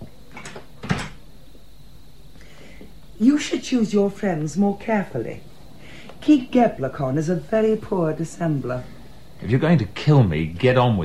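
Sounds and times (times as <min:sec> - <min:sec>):
door swinging shut with a thud: 0:00.3 - 0:01.2
speech: 0:03.2 - 0:05.5, 0:06.2 - 0:11.0.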